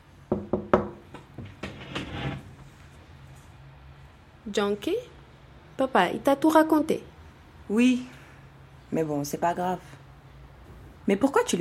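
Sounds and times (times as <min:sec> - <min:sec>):
firm knocks on a wooden door: 0:00.3 - 0:01.8
speech: 0:04.5 - 0:05.1, 0:05.8 - 0:07.1, 0:07.7 - 0:08.2, 0:08.9 - 0:10.0, 0:11.1 - 0:11.5.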